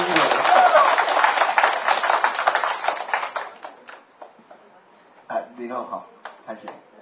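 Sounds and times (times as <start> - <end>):
audience applause: 0.0 - 4.0.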